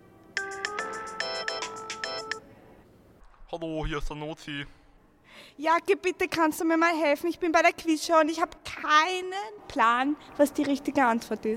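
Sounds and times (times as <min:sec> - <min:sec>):
telephone ringing with bright electronic melody on an outgoing call: 0:00.4 - 0:02.4
speech: 0:03.5 - 0:04.8, 0:05.6 - 0:11.5.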